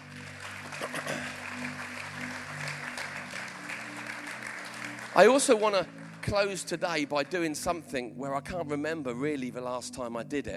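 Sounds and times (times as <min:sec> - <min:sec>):
audience applause: 0:00.0 - 0:07.6
speech: 0:05.2 - 0:10.5.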